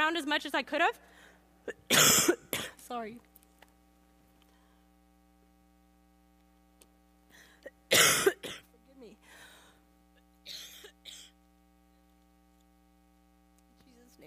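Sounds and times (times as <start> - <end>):
steady electrical hum: 0.0 - 14.2
speech: 0.1 - 3.3
harsh coughs in a short coughing fit: 1.7 - 2.8, 7.9 - 8.7, 10.5 - 11.3.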